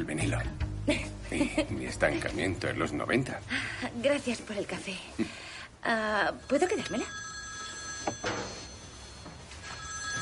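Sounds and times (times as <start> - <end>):
speech: 0.0 - 7.2
telephone ringing with bright electronic tone: 6.4 - 10.2.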